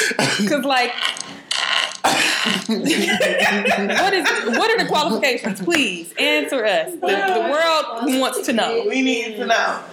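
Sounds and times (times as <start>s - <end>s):
speech: 0.0s - 1.3s, 2.0s - 9.9s
fart sound effect: 0.9s - 2.7s
laughter: 2.4s - 5.7s.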